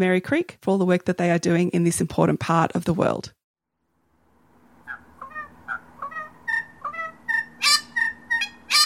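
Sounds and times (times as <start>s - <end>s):
speech: 0.0s - 3.4s
red wattlebird calling at Merry Creek in Melbourne Australia: 4.9s - 8.8s.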